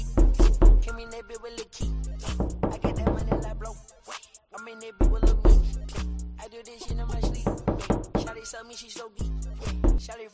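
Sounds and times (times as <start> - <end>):
knocking on a door in 8D audio: 0.2 - 0.9, 2.4 - 3.5, 5.0 - 5.7, 7.2 - 8.4, 9.8 - 10.0.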